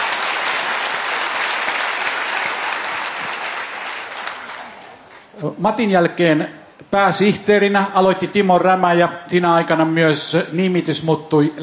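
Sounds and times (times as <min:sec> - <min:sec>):
audience applause at a celebration: 0:00.0 - 0:05.2
speech: 0:05.4 - 0:11.6.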